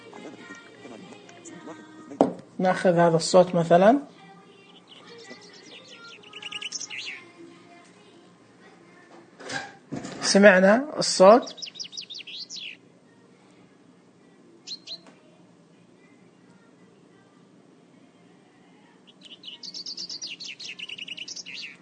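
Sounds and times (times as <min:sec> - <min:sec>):
steady low hum: 0:00.0 - 0:21.8
speech: 0:02.6 - 0:04.1, 0:10.3 - 0:11.6
recorded bird song played from an app: 0:04.5 - 0:07.4, 0:11.0 - 0:12.9, 0:14.6 - 0:15.1, 0:19.0 - 0:21.8.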